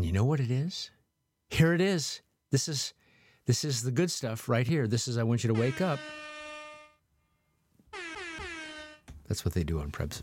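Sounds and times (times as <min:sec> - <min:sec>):
speech: 0:00.1 - 0:06.3, 0:09.3 - 0:10.2
air horn blasts: 0:05.5 - 0:09.1.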